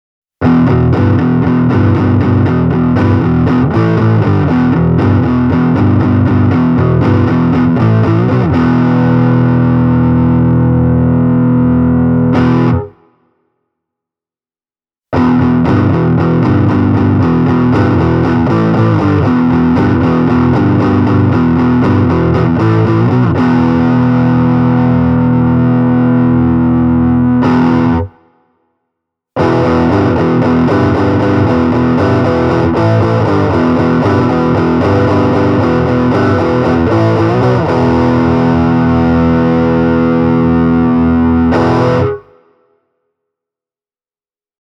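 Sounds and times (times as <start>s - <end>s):
distorted Epiphone Limited Edition Korina Flying V electric guitar: 0.4s - 13.1s, 15.1s - 28.3s, 29.4s - 42.5s.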